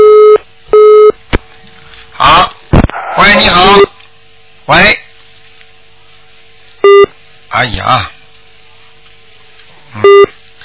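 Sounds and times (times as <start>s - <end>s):
short loud electronic beep on a telephone line during a call-in: 0.0s - 1.2s, 6.8s - 7.1s, 10.0s - 10.3s
faint low hum on a telephone line: 0.0s - 10.6s
speech: 7.6s - 8.2s.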